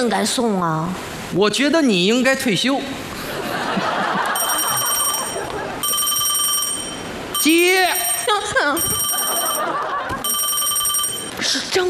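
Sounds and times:
speech: 0.0s - 3.1s, 7.4s - 9.0s, 11.5s - 11.8s
laughter: 3.2s - 5.8s, 8.3s - 10.4s
telephone ringing with electronic trilling: 4.2s - 11.4s.

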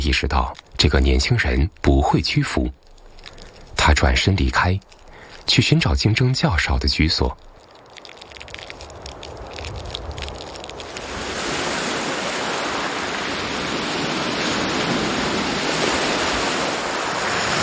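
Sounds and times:
speech: 0.0s - 2.8s, 3.9s - 7.5s
ocean waves washing into mangrove forest: 7.6s - 17.6s.

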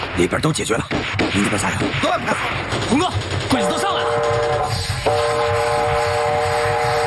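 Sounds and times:
speech: 0.2s - 5.5s
arriving train chugging and clattering: 1.4s - 7.0s
sustained train horn blaring: 3.8s - 7.0s.

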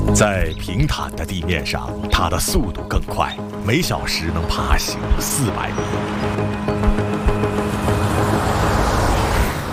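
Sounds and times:
speech: 0.1s - 6.9s
car driving along a road at about 80 kilometres per hour: 5.0s - 9.6s.

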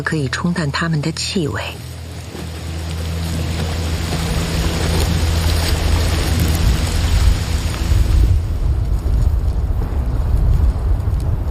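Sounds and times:
speech: 0.0s - 1.9s
loud rain hissing: 1.2s - 11.4s
deep rolling thunder rumble: 3.2s - 11.4s.

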